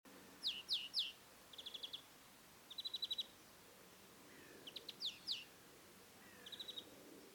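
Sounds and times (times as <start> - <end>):
faint background hiss: 0.1 - 7.3
European greenfinch Chloris chloris calling: 0.4 - 2.0, 2.7 - 3.3, 4.3 - 5.5.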